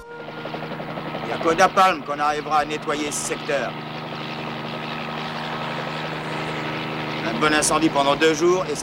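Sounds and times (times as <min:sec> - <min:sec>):
helicopter rotor and engine drone inside the cabin: 0:00.0 - 0:08.8
speech: 0:01.3 - 0:03.9, 0:07.3 - 0:08.8.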